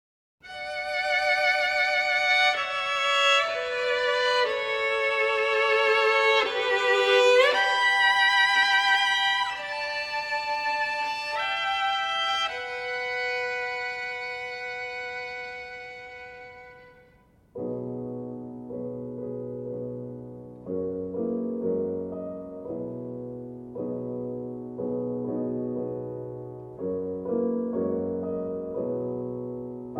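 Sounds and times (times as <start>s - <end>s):
violin: 0.4s - 17.8s
piano: 0.4s - 29.9s.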